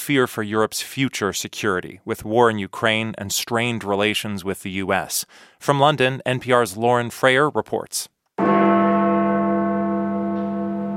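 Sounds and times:
speech: 0.0 - 8.1
Big Ben deep resonant bell strike in London: 8.4 - 10.9.

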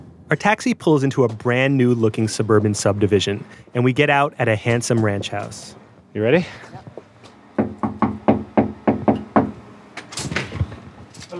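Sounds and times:
speech: 0.3 - 6.9
firm knocks on front door of a ranch house in Las Vegas: 7.6 - 9.6
rustling clatter of front door opening: 10.0 - 11.3.

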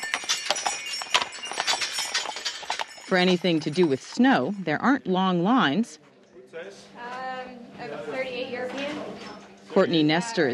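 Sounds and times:
light jingling from a horse-drawn wagon: 0.0 - 4.6
horse hooves clip-clopping from a horse-drawn wagon ride at a winter resort: 0.0 - 4.7
speech: 3.1 - 9.2, 9.8 - 10.5.

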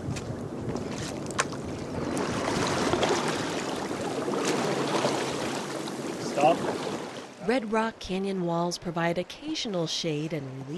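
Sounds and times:
light wind around the raft: 0.0 - 10.7
raft paddles splashing and churning through river water: 0.7 - 7.5
speech: 7.5 - 10.7.

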